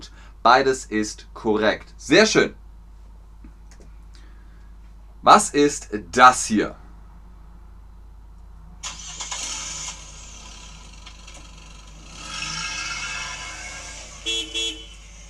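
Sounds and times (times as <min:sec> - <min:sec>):
speech: 0:00.4 - 0:02.6, 0:05.2 - 0:06.8
car engine cranking, starting and idling: 0:08.8 - 0:15.2
car horn honks: 0:14.1 - 0:15.2.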